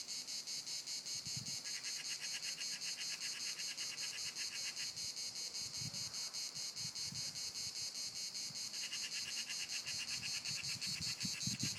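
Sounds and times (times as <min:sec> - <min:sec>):
crickets chirping: 0:00.0 - 0:11.7.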